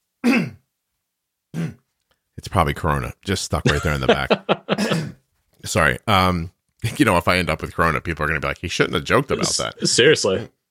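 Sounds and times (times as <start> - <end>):
person clearing throat: 0.2 - 0.6, 1.5 - 1.9, 4.7 - 5.2
speech: 2.4 - 10.6
laughter: 3.6 - 5.1, 9.3 - 10.1.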